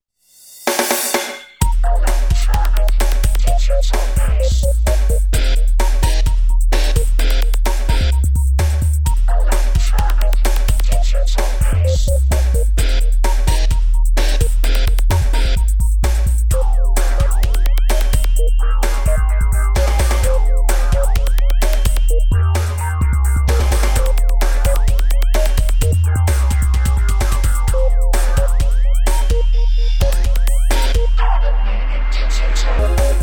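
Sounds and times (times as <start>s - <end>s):
automated digital bass: 1.6s - 33.2s.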